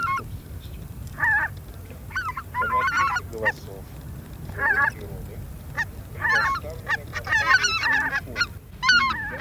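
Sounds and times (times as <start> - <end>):
greater white-fronted geese yelping honks and chatter: 0.0 - 0.3, 1.2 - 1.5, 2.1 - 3.7, 4.5 - 5.0, 5.7 - 9.3.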